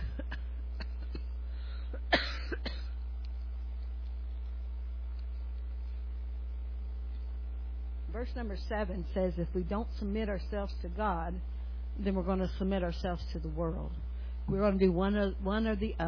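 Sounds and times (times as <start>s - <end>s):
people coughing and clearing throats in an audience: 0.0s - 3.0s
steady low electrical hum: 0.0s - 16.0s
speech: 8.2s - 16.0s.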